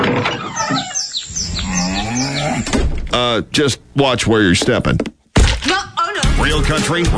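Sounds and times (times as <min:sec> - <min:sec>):
bird chirping in quick high notes: 0:00.2 - 0:02.9
cows mooing loudly in long overlapping calls: 0:00.5 - 0:02.8
speech: 0:03.3 - 0:05.1, 0:06.5 - 0:07.1.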